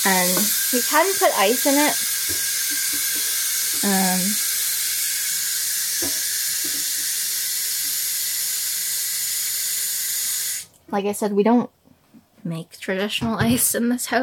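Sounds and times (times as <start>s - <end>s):
speech: 0.0s - 2.4s, 3.8s - 4.4s, 10.9s - 11.8s, 12.4s - 14.2s
pot of water heating toward a boil hissing: 0.0s - 10.7s.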